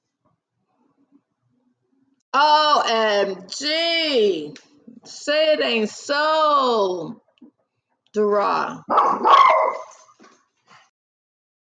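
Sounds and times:
speech: 2.4s - 7.2s, 8.2s - 9.8s
small dog yapping: 8.9s - 10.1s.

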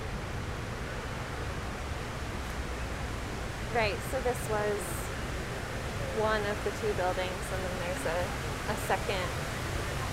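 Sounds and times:
rushing water of an infinity waterfall fountain at a memorial: 0.1s - 10.1s
speech: 3.8s - 5.0s, 6.2s - 9.5s.

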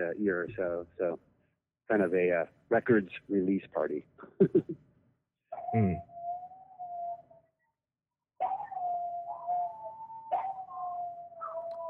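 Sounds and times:
speech: 0.0s - 4.9s, 5.5s - 6.1s
dogs or coyotes howling: 5.5s - 7.4s, 8.4s - 11.8s.

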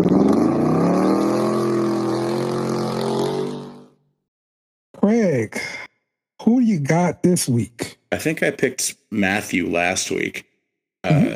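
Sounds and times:
loud truck engine revving: 0.0s - 3.9s
speech: 6.5s - 11.3s.

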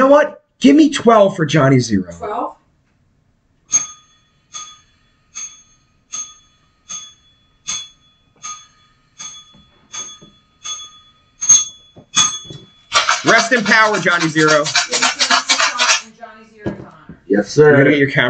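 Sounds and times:
speech: 0.0s - 2.6s, 13.3s - 15.1s, 17.3s - 18.2s
bright metallic bell being struck: 3.7s - 15.6s.

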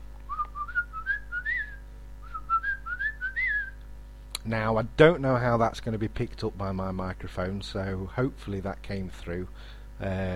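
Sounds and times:
person whistling an imitation of a bird call: 0.3s - 3.8s
speech: 4.4s - 10.3s.

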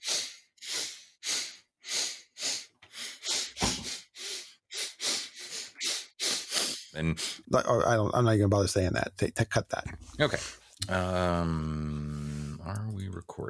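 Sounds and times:
wet sniffles and snorts through a nose congested by allergies: 0.0s - 7.5s
speech: 7.0s - 12.0s, 12.7s - 13.4s.

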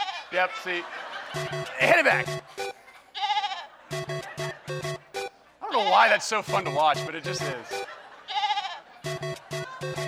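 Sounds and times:
sheep bleating while jumping in: 0.0s - 0.2s, 3.2s - 3.7s, 8.3s - 8.8s
laughter: 0.2s - 5.2s, 6.6s - 10.0s
speech: 0.3s - 2.8s, 5.8s - 7.8s, 9.2s - 10.0s.

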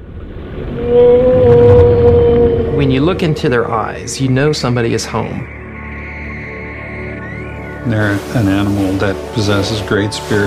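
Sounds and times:
low underwater rumble: 0.0s - 4.7s
killer whale call: 0.6s - 9.3s
speech: 2.9s - 5.6s, 7.8s - 10.4s.

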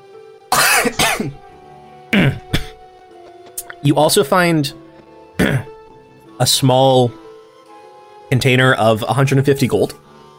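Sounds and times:
person clearing throat after choking on spit: 0.5s - 1.4s, 2.1s - 2.8s, 5.4s - 5.8s
person coughing after choking on own spit: 0.5s - 1.4s, 2.1s - 2.8s, 5.4s - 5.8s
speech: 0.8s - 1.4s, 3.8s - 4.8s, 6.4s - 7.2s, 8.3s - 10.0s.

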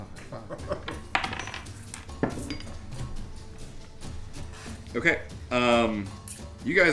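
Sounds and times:
dice clattering across a hard tabletop: 1.1s - 1.8s
speech: 5.0s - 6.9s.

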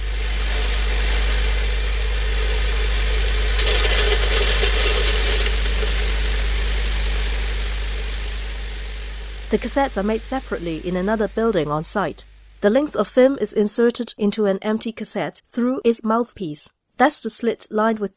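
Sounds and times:
vibrating cassette feed hopper tray: 0.0s - 12.7s
speech: 9.5s - 18.1s.

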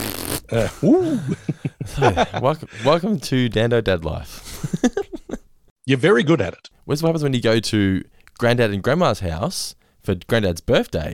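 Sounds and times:
voice imitating fart noises with raspberries: 0.0s - 0.7s
speech: 0.5s - 5.1s, 5.9s - 11.1s
laughter: 0.6s - 3.0s, 4.5s - 5.4s.

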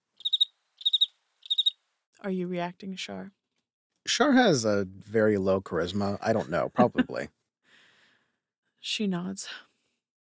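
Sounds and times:
cricket chirps: 0.2s - 1.8s
speech: 2.2s - 3.4s, 4.1s - 7.4s, 8.8s - 9.7s
laughter: 6.0s - 7.3s.

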